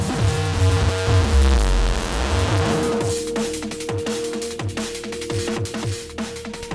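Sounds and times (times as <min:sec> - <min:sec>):
audio feedback loop with saturated distortion: 0:00.0 - 0:06.7.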